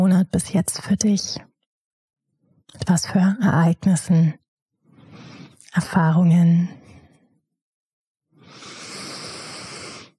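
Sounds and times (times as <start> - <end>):
speech: 0.1 - 1.5, 2.7 - 4.4, 5.8 - 6.8
deep breath: 4.8 - 5.6, 8.3 - 10.1.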